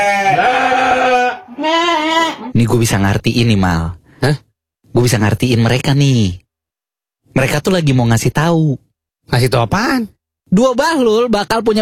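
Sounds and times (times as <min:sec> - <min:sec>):
goat bleating: 0:00.0 - 0:02.6
speech: 0:02.5 - 0:06.4, 0:07.3 - 0:11.8.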